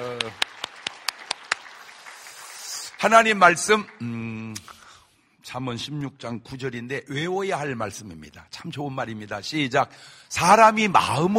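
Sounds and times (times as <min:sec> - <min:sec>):
church audience clapping in a steady rhythm: 0:00.0 - 0:04.9
speech: 0:03.0 - 0:04.4, 0:05.5 - 0:11.3.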